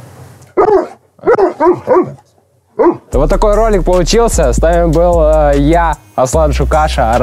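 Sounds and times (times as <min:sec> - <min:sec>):
dogs barking: 0:00.6 - 0:03.2
speech: 0:00.7 - 0:02.2, 0:02.8 - 0:07.2.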